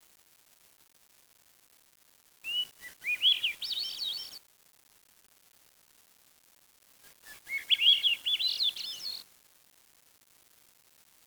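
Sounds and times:
bird song warble: 2.5s - 4.4s, 7.2s - 9.2s.

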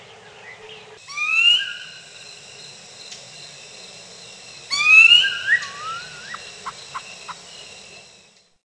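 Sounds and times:
bird whistle sliding upward: 4.7s - 6.5s.

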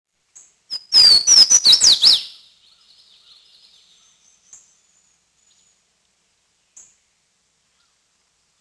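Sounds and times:
Swainson's Warbler singing: 0.7s - 5.8s.

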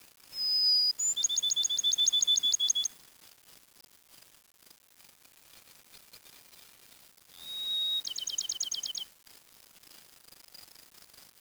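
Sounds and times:
bird singing: 0.4s - 2.9s, 7.4s - 9.0s.

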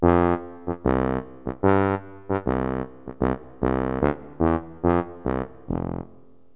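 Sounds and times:
tuba: 0.0s - 6.5s.

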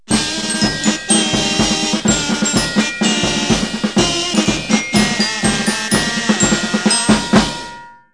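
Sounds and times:
kazoo marching band with comedy accents: 0.0s - 7.9s.

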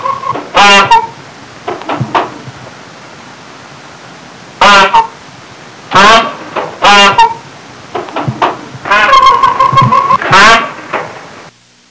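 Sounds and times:
peacock: 0.0s - 1.2s, 5.9s - 7.4s, 8.0s - 11.0s.

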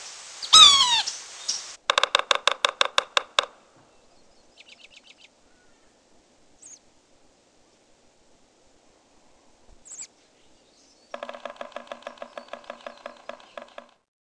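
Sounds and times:
yellow-bellied sapsucker drumming: 0.4s - 3.6s, 11.1s - 14.1s.

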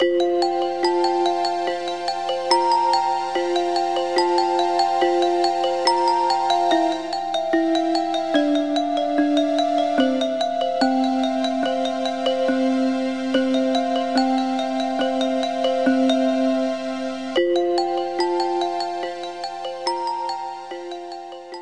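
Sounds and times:
tinkle: 0.0s - 21.6s.

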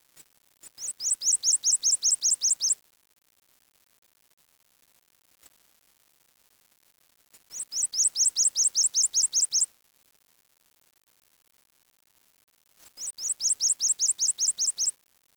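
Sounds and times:
bird calling in high thin repeated notes: 0.8s - 2.8s, 7.5s - 9.7s, 13.0s - 14.9s.

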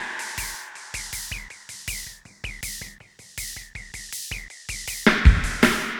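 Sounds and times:
ambient drum loop at 160 BPM: 0.0s - 5.9s.

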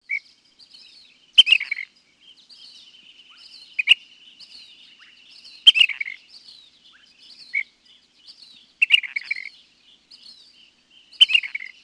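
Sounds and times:
Ash-throated Flycatcher calls: 0.0s - 11.8s
soft chirps from other birds: 0.0s - 11.8s.

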